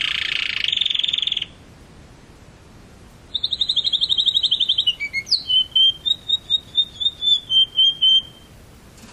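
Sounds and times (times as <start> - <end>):
canary song with buzzy burst, trill and whistled notes: 0.0 - 1.6, 3.2 - 8.8.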